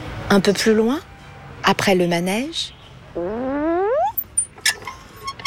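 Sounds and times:
speech: 0:00.3 - 0:01.1, 0:01.7 - 0:03.3
swing creaking: 0:03.2 - 0:05.4.

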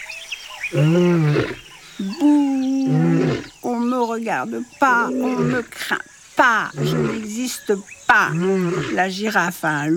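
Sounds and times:
faint wild outdoor ambience: 0:00.0 - 0:09.9
lion roaring: 0:00.7 - 0:01.7, 0:02.8 - 0:03.6, 0:05.1 - 0:05.8, 0:06.7 - 0:07.3
speech: 0:00.7 - 0:09.9.

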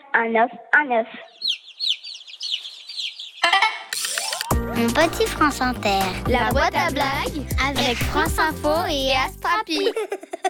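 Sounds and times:
speech: 0:00.2 - 0:01.4, 0:04.8 - 0:10.4
hen clucking: 0:01.1 - 0:04.1
laughter: 0:09.7 - 0:10.4.

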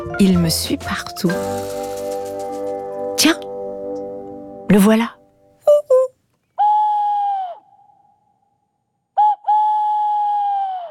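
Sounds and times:
speech: 0:00.2 - 0:01.9, 0:03.2 - 0:03.5, 0:04.7 - 0:05.2
owl hooting at night: 0:06.6 - 0:08.1, 0:09.1 - 0:10.8.

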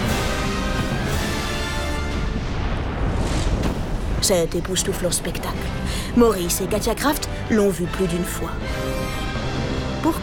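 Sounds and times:
volcanic eruption with lava churning and exploding: 0:00.0 - 0:04.6
speech: 0:04.3 - 0:09.0, 0:10.0 - 0:10.2.

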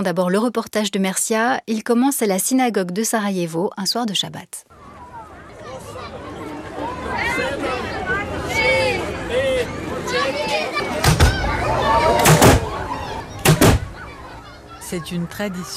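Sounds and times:
speech: 0:00.0 - 0:04.7, 0:14.9 - 0:15.7
crowd chatter and babble: 0:04.7 - 0:15.7.

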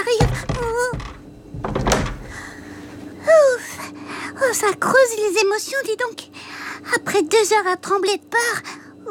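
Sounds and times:
door being shut quickly: 0:00.0 - 0:02.5
speech: 0:04.6 - 0:09.0.

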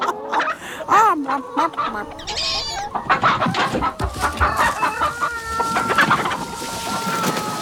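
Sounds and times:
hens clucking: 0:00.0 - 0:07.6
rooster crowing: 0:02.2 - 0:07.6.

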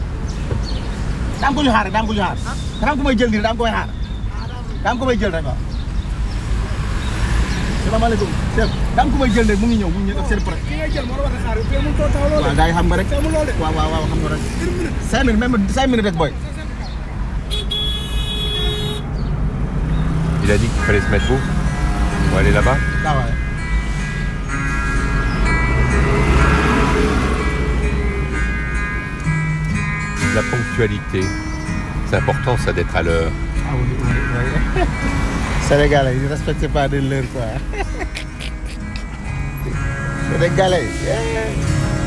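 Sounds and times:
buses and other vehicles passing: 0:00.0 - 0:03.2, 0:05.4 - 0:42.0
street traffic roar: 0:00.0 - 0:42.0
speech: 0:01.4 - 0:04.0, 0:04.8 - 0:05.7, 0:07.8 - 0:16.5, 0:20.5 - 0:21.6, 0:22.3 - 0:23.4, 0:30.3 - 0:31.4, 0:32.1 - 0:38.1, 0:40.3 - 0:41.8
laughter: 0:14.1 - 0:15.4, 0:34.4 - 0:35.2, 0:37.2 - 0:39.9
car horn toot: 0:17.4 - 0:19.1, 0:20.5 - 0:29.2.

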